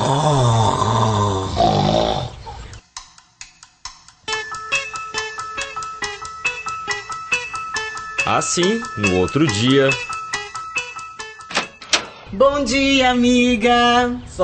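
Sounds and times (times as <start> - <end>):
man snoring while asleep: 0.0 - 2.4
plucked bouncy musical notes: 4.3 - 12.2
speech: 8.3 - 10.1, 12.3 - 14.4.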